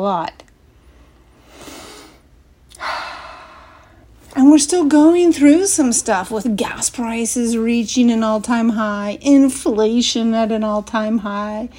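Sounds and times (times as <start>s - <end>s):
speech: 0.0s - 0.4s, 4.4s - 11.7s
deep breath: 0.8s - 4.1s.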